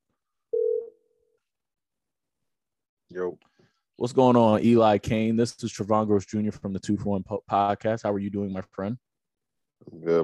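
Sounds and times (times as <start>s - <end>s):
electronic telephone tone of an outgoing call ringing: 0.5s - 0.9s
speech: 3.1s - 9.1s, 9.8s - 10.2s.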